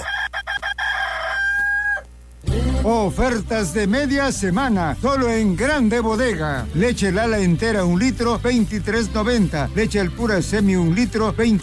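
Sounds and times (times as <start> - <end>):
rooster crowing in a stuttering way: 0.0 - 2.2
speech: 2.6 - 11.6.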